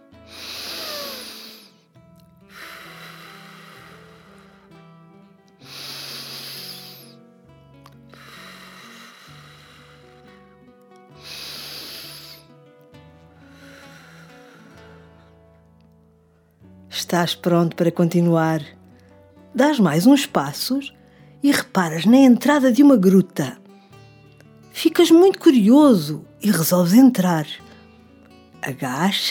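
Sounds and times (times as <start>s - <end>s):
soft steady music: 0.0s - 29.2s
slow deep breaths exhaled through the mouth: 0.2s - 5.0s, 5.6s - 7.3s, 8.0s - 10.5s, 11.1s - 12.6s, 13.4s - 15.5s, 21.0s - 21.4s
speech: 17.0s - 18.8s, 19.6s - 23.6s, 24.8s - 27.6s, 28.6s - 29.2s.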